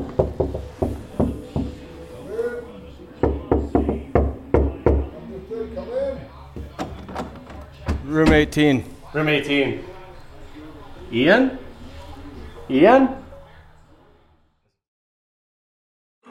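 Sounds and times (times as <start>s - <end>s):
knocking on a hotel room door: 0.0s - 1.8s, 3.2s - 5.2s
faint voices murmuring: 0.0s - 14.7s
speech: 8.2s - 9.9s, 11.1s - 11.6s, 12.7s - 13.2s.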